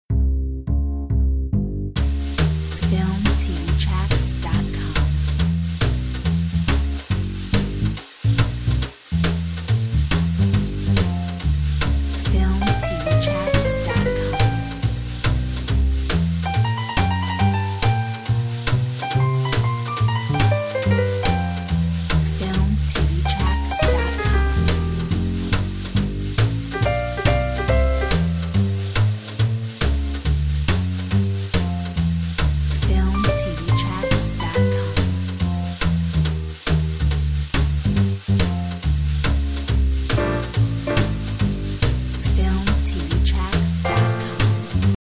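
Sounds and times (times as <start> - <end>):
drum and bass music: 0.1 - 44.9.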